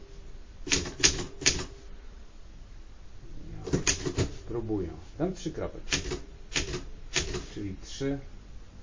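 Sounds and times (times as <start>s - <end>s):
typewriter keys clacking: 0.7s - 1.7s, 3.7s - 4.4s, 5.9s - 7.6s
speech: 4.7s - 6.3s, 7.6s - 8.4s.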